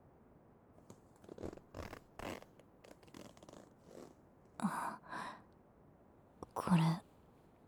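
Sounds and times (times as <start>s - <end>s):
zipper being unzipped: 1.2s - 4.2s
speech: 6.6s - 7.0s.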